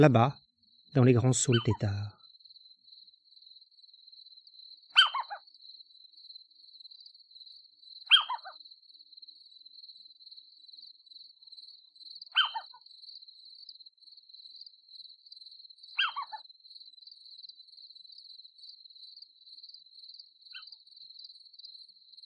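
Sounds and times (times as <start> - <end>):
speech: 0.0 - 2.2
chorus of crickets and grasshoppers chirping: 0.0 - 22.2
short descending bird call: 1.0 - 2.1, 4.9 - 5.4, 8.1 - 8.6, 12.3 - 12.8, 16.0 - 16.4.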